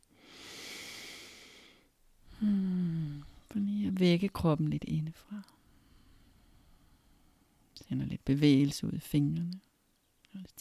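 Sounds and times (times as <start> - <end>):
deep breath in through the nose during a guided relaxation exercise: 0.1 - 1.9, 5.7 - 7.6
speech: 3.6 - 5.6, 7.9 - 9.7, 10.3 - 10.6.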